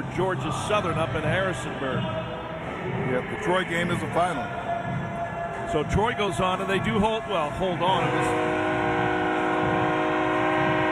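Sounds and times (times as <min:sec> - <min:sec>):
speech: 0:00.0 - 0:04.6, 0:05.7 - 0:08.8
low rumbling noise: 0:00.0 - 0:10.8
train horn at a college football stadium after a game: 0:04.0 - 0:10.8.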